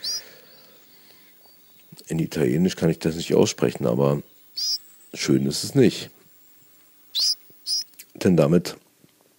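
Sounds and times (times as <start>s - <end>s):
ortolan bunting call: 0.0s - 1.9s, 4.3s - 5.2s, 7.1s - 8.0s
speech: 2.1s - 4.3s, 5.2s - 6.2s, 8.2s - 8.8s.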